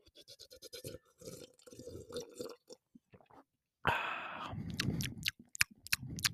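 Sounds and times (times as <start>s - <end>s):
swallowing and gulping water: 0.9s - 3.4s, 4.4s - 6.3s
person sipping water: 1.2s - 2.8s, 3.9s - 6.3s.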